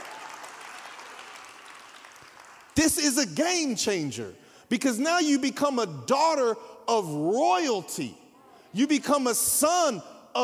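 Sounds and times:
large audience clapping: 0.0s - 2.8s
speech: 2.8s - 10.4s.

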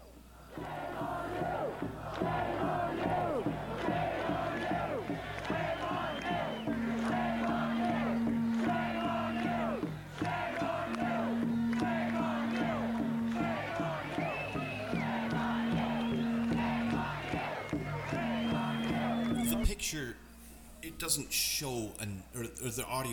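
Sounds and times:
huge protest crowd in Ireland chanting against COVID lockdowns: 0.4s - 19.6s
sustained horn-like tone: 5.5s - 20.6s
speech: 21.1s - 23.1s.

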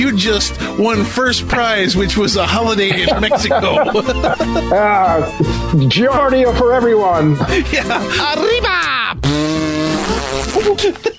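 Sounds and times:
speech: 0.0s - 9.4s, 10.3s - 11.1s
laughter: 2.8s - 5.5s, 7.4s - 8.7s, 10.1s - 11.1s
buzzing raspberry blown with the lips imitating a fart: 9.2s - 11.0s.

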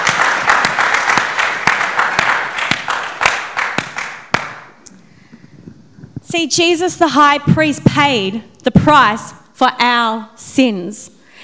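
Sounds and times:
audience clapping at a morning church service: 0.0s - 4.8s
speech: 6.3s - 11.2s.

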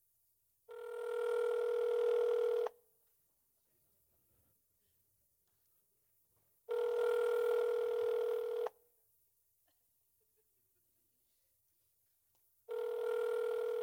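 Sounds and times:
Apple phone ringback tone over speakerphone: 0.7s - 2.8s, 6.7s - 8.8s, 12.7s - 13.8s.

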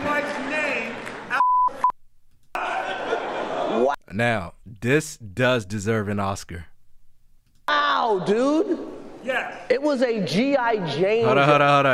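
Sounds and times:
censor bleep covering a swear word: 1.4s - 2.0s
laughter: 2.6s - 4.0s, 11.2s - 11.9s
speech: 4.2s - 6.7s, 7.7s - 11.9s.

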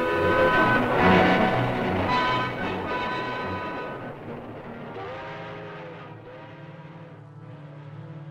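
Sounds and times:
steam locomotive hissing: 0.0s - 6.5s
steam locomotive running on rails: 0.0s - 8.2s
sustained tonal whines: 0.0s - 8.2s.

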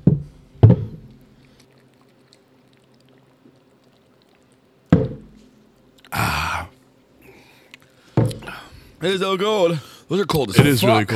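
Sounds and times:
people glugging down cold shots: 1.2s - 9.0s
speech: 9.0s - 11.1s.

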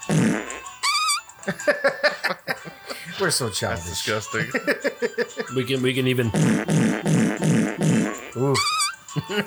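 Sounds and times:
fart sound effect from a button: 0.0s - 1.2s, 6.4s - 9.0s
laughter: 1.4s - 7.4s, 8.2s - 9.4s
speech: 3.2s - 9.4s.

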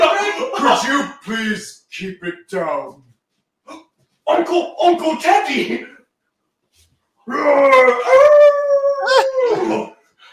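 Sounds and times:
speech: 0.8s - 3.1s, 3.7s - 6.0s, 7.3s - 9.9s
wolf howling: 7.3s - 10.0s.

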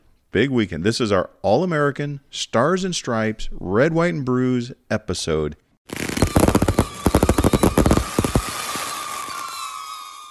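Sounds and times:
speech: 0.3s - 6.0s
fireworks popping and banging: 5.9s - 10.2s.

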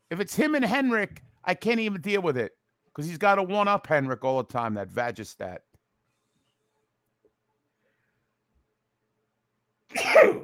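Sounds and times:
speech: 0.1s - 5.7s, 9.9s - 10.4s
sharp breathy sneeze: 9.9s - 10.4s.

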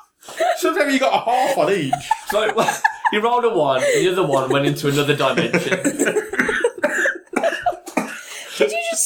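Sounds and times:
laughter: 0.3s - 8.8s
speech: 0.8s - 6.4s
harsh raspy coughing: 6.1s - 8.4s
person gasping: 6.4s - 8.7s.

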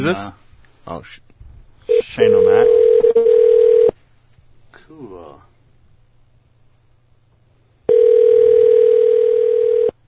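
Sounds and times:
speech: 0.0s - 1.2s, 2.2s - 3.4s
telephone ringing on an outgoing call: 1.9s - 3.9s, 7.9s - 10.0s.

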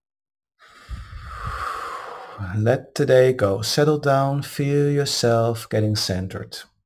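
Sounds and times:
deep breath drawn in through the nose: 0.6s - 2.5s
speech: 2.4s - 6.7s.

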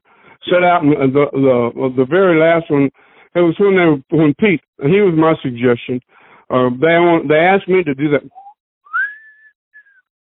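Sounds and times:
speech: 0.5s - 8.4s
person whistling a melody: 8.3s - 10.1s.

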